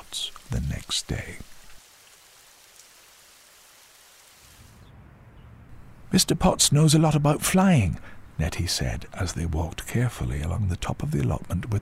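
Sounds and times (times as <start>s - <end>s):
steady rain spattering on surfaces: 0.0s - 4.8s
speech: 0.5s - 1.5s, 6.1s - 11.7s.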